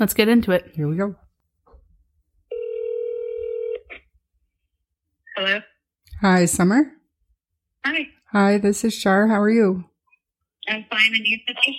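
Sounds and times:
speech: 0.0s - 1.2s, 5.4s - 7.0s, 7.8s - 9.9s, 10.6s - 11.7s
telephone line electronic ringing tone: 2.5s - 3.9s.

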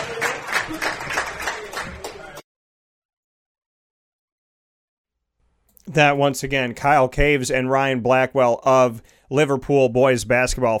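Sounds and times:
small group clapping at a pub in Liverpool: 0.0s - 2.4s
speech: 5.9s - 10.7s.

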